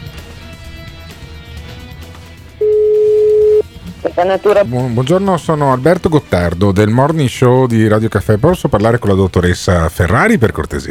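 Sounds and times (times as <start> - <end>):
electronic phone ringing tone: 2.6 - 4.2
speech: 4.2 - 10.8.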